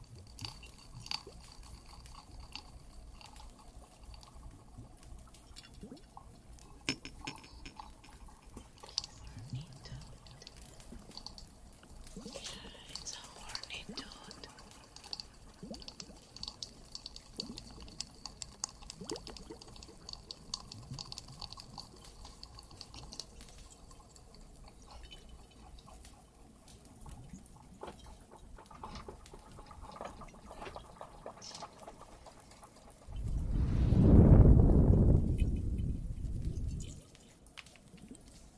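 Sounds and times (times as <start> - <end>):
small crackling ticks of a fireplace: 0.0 - 33.3, 35.3 - 38.5
soft hollow hiss: 0.0 - 38.5
water trickling and dripping in a cave: 0.0 - 38.5
loud deep rushing surge: 33.1 - 36.2.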